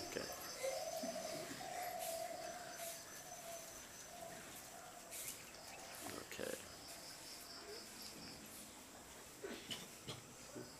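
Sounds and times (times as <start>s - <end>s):
bird calling with low drawn-out cooing notes: 0.0s - 4.9s
hissy outdoor background: 0.0s - 10.7s
speech: 0.2s - 0.4s.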